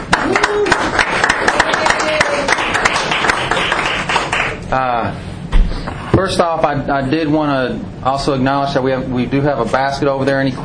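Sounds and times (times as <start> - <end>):
audience clapping: 0.0 - 4.6
speech: 6.3 - 10.6.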